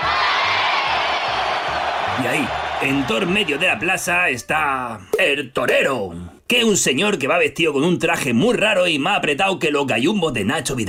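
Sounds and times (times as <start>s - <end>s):
packed bullfighting arena crowd shouting and cheering: 0.0s - 4.3s
speech: 2.2s - 10.8s.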